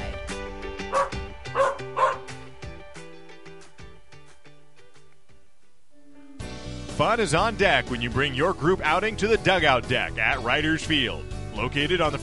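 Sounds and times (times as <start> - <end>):
musical backing: 0.0 - 12.2
dog barking: 0.9 - 2.3
speech: 7.0 - 12.2.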